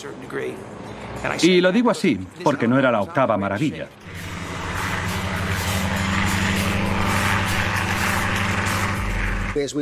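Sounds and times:
speech: 0.0 - 4.3, 9.6 - 9.8
Mi-17 helicopter engine and rotor climbing over Afghanistan: 3.6 - 9.7.

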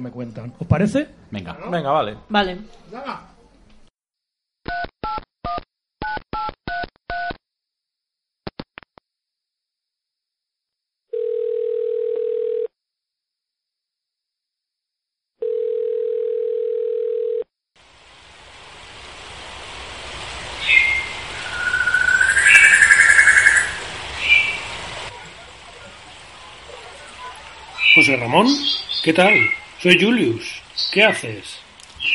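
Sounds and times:
speech: 0.0 - 3.3, 28.1 - 31.7
telephone ringing tone: 11.1 - 12.7, 15.4 - 17.5
bird calls in a tropical rainforest: 20.5 - 31.3, 31.9 - 32.1.

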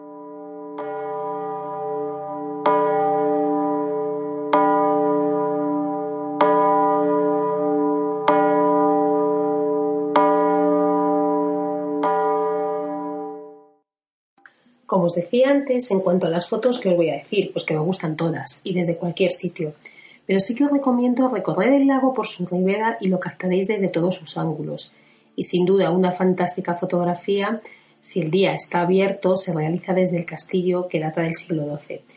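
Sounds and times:
large wishing bell ringing: 0.0 - 13.8
speech: 15.1 - 32.1.

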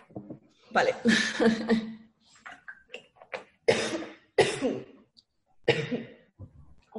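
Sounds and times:
speech: 0.7 - 1.9
person clearing throat: 3.6 - 5.0, 5.7 - 6.3
person coughing: 3.7 - 5.0, 5.7 - 6.3.

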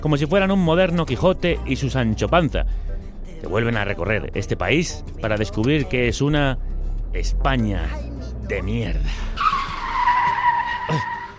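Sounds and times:
speech: 0.0 - 9.6, 10.9 - 11.2
car tires screeching under hard braking: 9.0 - 11.3.

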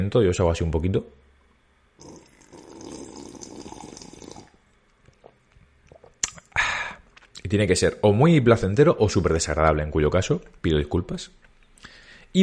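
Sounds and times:
speech: 0.0 - 1.2, 7.4 - 11.5
slurping water from a glass: 2.0 - 7.4
small wet mouth clicks: 5.1 - 7.4.

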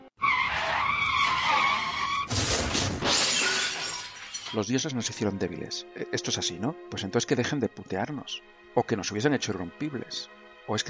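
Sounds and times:
car tires screeching in a long loud skid: 0.2 - 2.6
car crashing: 0.2 - 4.7
debris crunching: 2.3 - 4.9
glass shattering: 2.3 - 4.9
speech: 4.5 - 10.8.

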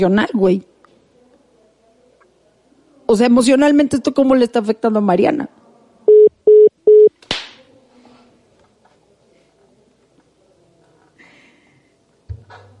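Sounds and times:
speech: 0.0 - 0.7, 3.1 - 5.6
telephone electronic beeps while redialing a call: 6.1 - 7.1.

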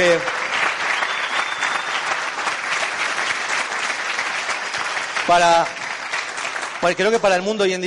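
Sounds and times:
speech: 0.0 - 0.4, 5.3 - 5.8, 6.8 - 7.8
crowd applause: 0.0 - 7.8
whistle-like tone: 1.0 - 2.0.

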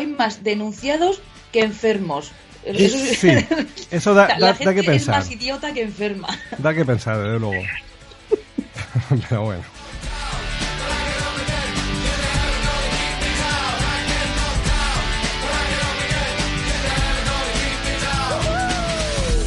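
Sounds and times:
upbeat song with a driving rhythm: 0.0 - 19.4
speech: 0.2 - 7.9, 9.0 - 9.8
person yelling over music: 2.8 - 5.3, 18.2 - 19.4
laughter: 2.8 - 5.4, 6.1 - 9.7.

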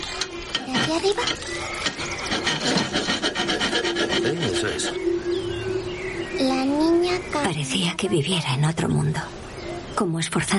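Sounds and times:
file rasping on a hoop: 0.6 - 5.0
speech: 0.9 - 2.9, 4.2 - 5.4, 6.4 - 9.4, 10.0 - 10.5.

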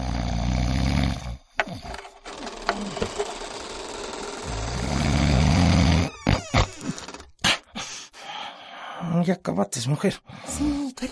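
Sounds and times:
man snoring loudly with rasping rumbling breaths: 0.0 - 3.5, 4.3 - 7.2
speech: 9.3 - 11.0.

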